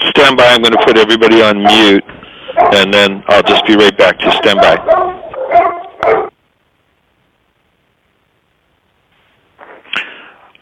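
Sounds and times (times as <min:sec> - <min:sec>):
speech: 0:00.2 - 0:05.1
dog barking: 0:00.7 - 0:06.4.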